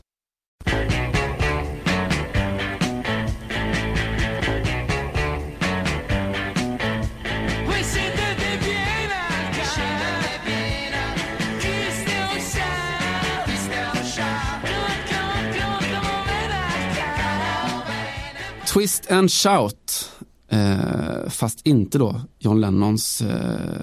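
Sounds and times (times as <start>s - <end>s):
full musical backing: 0.6s - 19.3s
crowd singing a lively Neapolitan song: 7.7s - 18.7s
speech: 18.8s - 23.8s.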